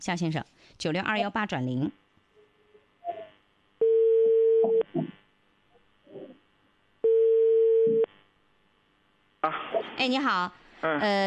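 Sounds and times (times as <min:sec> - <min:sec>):
speech: 0:00.0 - 0:02.0, 0:09.4 - 0:11.2
telephone ringback tones while dialing a call: 0:03.8 - 0:04.8, 0:07.0 - 0:08.1.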